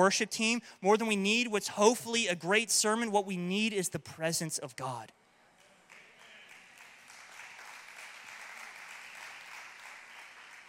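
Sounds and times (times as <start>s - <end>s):
speech: 0.0s - 5.2s
crowd applauding: 5.9s - 10.6s.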